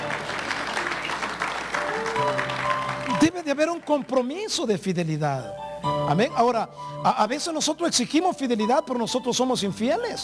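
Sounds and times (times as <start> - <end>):
church congregation applauding during a sermon: 0.0 - 4.6
speech: 3.2 - 10.2.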